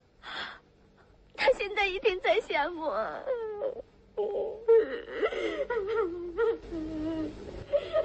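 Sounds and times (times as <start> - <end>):
speech: 1.9 - 8.0
woman crying and wailing: 2.9 - 8.0.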